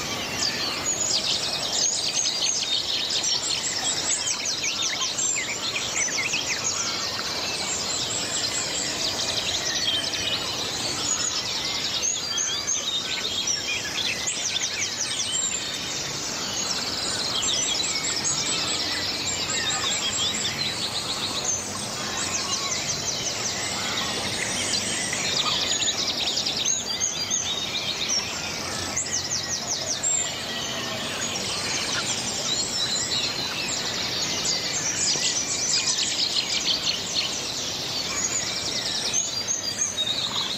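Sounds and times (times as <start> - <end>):
dawn chorus of many birds chirping and singing: 0.0 - 40.5.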